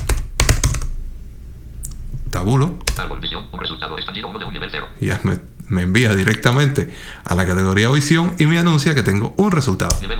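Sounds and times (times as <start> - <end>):
typing on a computer keyboard: 0.0 - 0.9
speech: 2.4 - 10.1.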